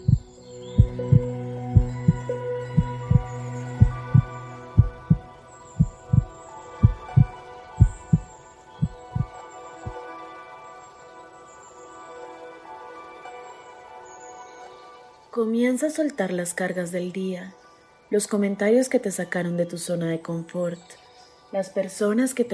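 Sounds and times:
slow steady heartbeat thumping: 0.0s - 9.3s
soft sustained hum and tonal drone: 0.0s - 9.3s
speech: 15.4s - 22.5s.

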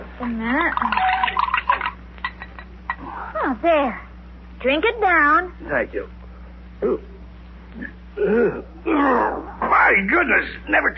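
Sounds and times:
speech: 0.2s - 1.4s, 3.4s - 6.2s, 6.8s - 7.1s, 7.8s - 10.9s
medicine poured into a glass of water: 0.7s - 2.0s.

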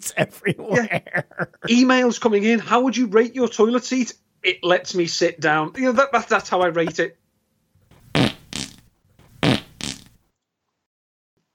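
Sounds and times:
laughter: 0.0s - 1.9s
speech: 0.0s - 7.2s
loud buzzy fart noises: 7.9s - 10.2s.

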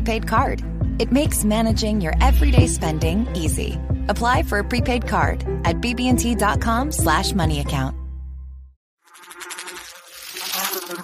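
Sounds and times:
speech: 0.0s - 8.0s
low hum: 1.6s - 3.2s
flying insect buzzing: 9.0s - 11.0s.

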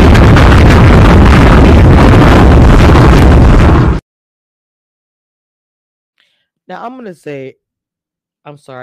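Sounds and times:
bomb explosion roaring rumble: 0.0s - 4.0s
speech: 6.7s - 7.6s, 8.4s - 8.8s.

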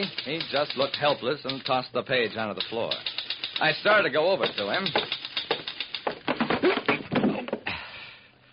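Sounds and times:
typewriter typing: 0.0s - 1.8s, 2.5s - 6.9s
speech: 0.0s - 5.2s.

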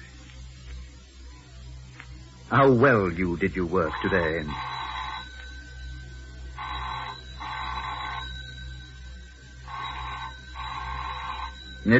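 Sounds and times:
low hum: 0.0s - 11.9s
speech: 2.5s - 4.8s
telephone ringing in double bursts: 3.8s - 11.9s.

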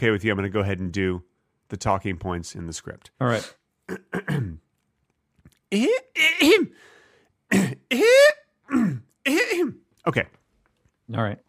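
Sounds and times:
speech: 0.0s - 4.6s, 5.7s - 6.9s, 7.5s - 10.4s, 11.1s - 11.4s
person clearing throat: 3.9s - 4.6s, 5.8s - 6.8s, 7.5s - 9.8s.

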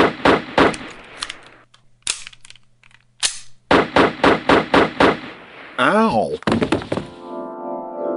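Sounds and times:
gunshot sound effects: 0.0s - 1.0s, 3.7s - 5.8s
gun clicks: 0.7s - 3.6s
speech: 5.8s - 6.5s.

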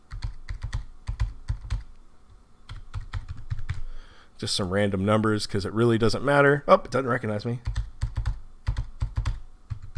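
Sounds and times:
computer keyboard typing a password: 0.0s - 2.0s, 2.7s - 3.9s, 7.6s - 9.9s
speech: 4.4s - 7.8s.

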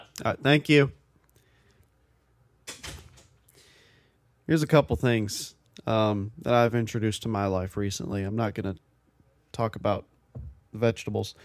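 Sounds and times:
speech: 0.2s - 1.0s, 4.5s - 8.9s, 9.6s - 10.1s, 10.7s - 11.4s
door swinging shut with a thud and rattle: 2.7s - 3.3s.

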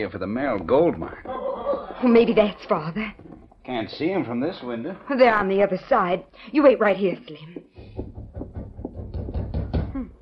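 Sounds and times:
sharp raps on a door: 0.0s - 3.7s, 7.8s - 10.1s
speech: 0.0s - 7.7s.

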